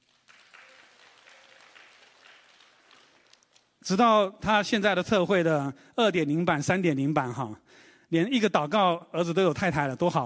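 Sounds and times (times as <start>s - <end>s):
crowd clapping in unison: 0.0s - 3.8s
speech: 3.9s - 10.2s.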